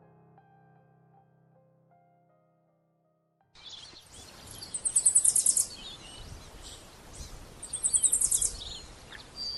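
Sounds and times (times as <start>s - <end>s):
sparrow singing on a starfruit tree branch beside a house: 3.6s - 9.5s
soft steady hiss: 4.1s - 9.5s.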